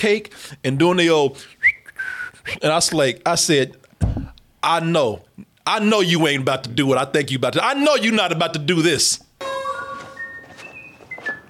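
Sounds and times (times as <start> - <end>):
speech: 0.0 - 1.6, 2.4 - 9.2
person whistling a jaunty tune: 1.6 - 2.4, 10.1 - 11.4.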